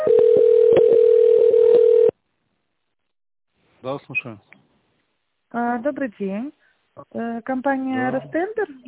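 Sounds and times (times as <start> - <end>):
telephone line tones while a call is transferred: 0.1 - 2.1
speech: 4.1 - 4.6, 5.5 - 8.8.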